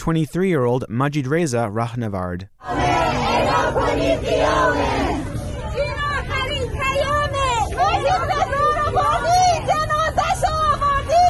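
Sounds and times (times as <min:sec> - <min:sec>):
speech: 0:00.0 - 0:05.3
students chanting in protest: 0:02.6 - 0:05.7
murmuring crowd babble: 0:02.6 - 0:11.2.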